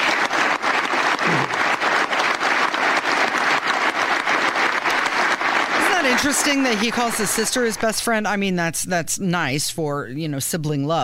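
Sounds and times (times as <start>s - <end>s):
large crowd applauding at the Irish Parliament: 0.0s - 8.3s
speech: 6.2s - 11.0s.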